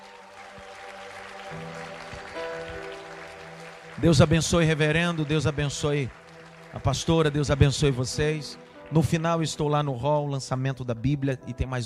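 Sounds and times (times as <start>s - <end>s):
audience applauding the name of Jesus: 0.0s - 9.9s
speech: 4.0s - 6.2s, 6.8s - 11.8s.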